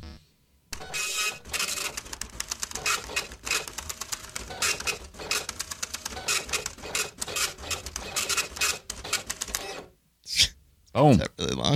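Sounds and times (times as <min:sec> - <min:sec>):
printer printing out a page with whirring clicks and buzzes: 0:00.8 - 0:09.9
speech: 0:11.0 - 0:11.7.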